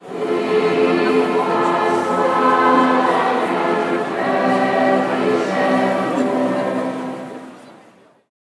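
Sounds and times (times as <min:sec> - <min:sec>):
Christmas choir performing in front of a crowd: 0:00.0 - 0:07.6.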